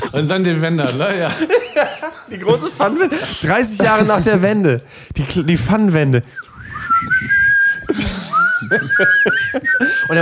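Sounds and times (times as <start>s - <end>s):
laughter: 0.0s - 4.6s, 7.2s - 10.2s
speech: 0.1s - 6.5s, 8.7s - 10.2s
person whistling a pop song melody: 6.3s - 10.2s.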